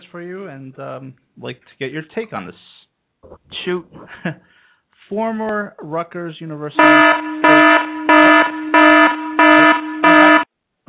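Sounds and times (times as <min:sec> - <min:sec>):
speech: 0:00.1 - 0:08.0
laughter: 0:03.9 - 0:04.4
loud harsh electronic buzzer: 0:06.8 - 0:10.5.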